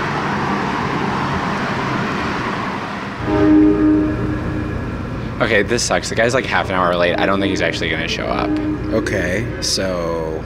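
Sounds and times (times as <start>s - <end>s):
subway train rumbling through the station: 0.0s - 10.4s
sustained high-pitched tonal whine: 3.2s - 10.4s
speech: 5.4s - 10.4s.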